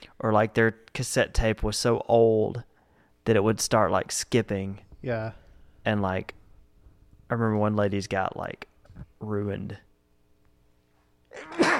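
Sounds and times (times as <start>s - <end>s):
speech: 0.2s - 6.4s, 7.3s - 9.8s, 11.4s - 11.7s
person sneezing: 11.3s - 11.7s.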